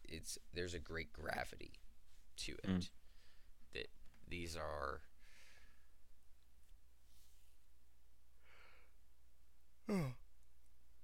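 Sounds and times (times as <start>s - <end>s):
low hiss: 0.0s - 11.0s
speech: 0.2s - 3.0s, 3.7s - 5.1s, 9.9s - 10.2s
person giving a stifled yawn: 9.9s - 10.2s.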